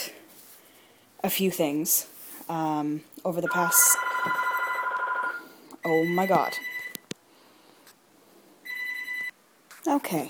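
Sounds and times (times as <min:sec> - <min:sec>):
speech: 0:01.2 - 0:04.4, 0:05.8 - 0:06.7, 0:09.9 - 0:10.2
house landline phone ringing with an electronic warble: 0:03.5 - 0:07.0.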